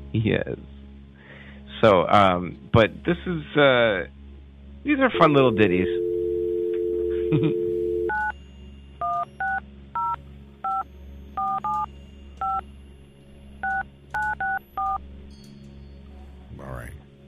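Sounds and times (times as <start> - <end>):
speech: 0.1 - 0.8, 1.8 - 4.2, 4.8 - 6.0, 7.3 - 7.6
brief steady tone: 5.1 - 8.1
telephone keypad tones dialing a number: 5.2 - 8.3, 9.0 - 10.8, 11.4 - 12.6, 13.6 - 15.0.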